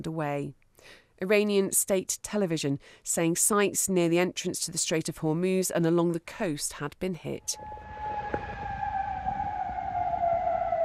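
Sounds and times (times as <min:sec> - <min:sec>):
speech: 0:00.0 - 0:08.1
air raid siren wailing: 0:07.4 - 0:10.8.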